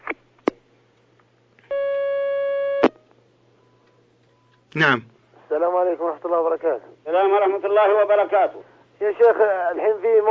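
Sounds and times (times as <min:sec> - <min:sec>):
telephone line tone as a caller is connected: 0:01.7 - 0:02.9
speech: 0:04.7 - 0:10.2.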